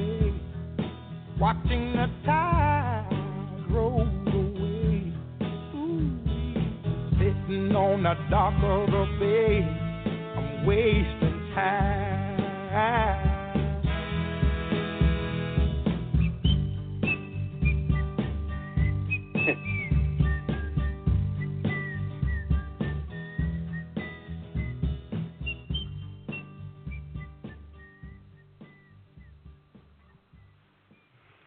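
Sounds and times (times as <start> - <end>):
bass: 0.0 - 31.4
steady drums: 0.0 - 31.4
speech: 1.4 - 2.7, 7.6 - 9.8, 10.6 - 12.2
full band backing with drums and bass: 7.2 - 27.5
person whistling a slow song melody: 16.2 - 29.4.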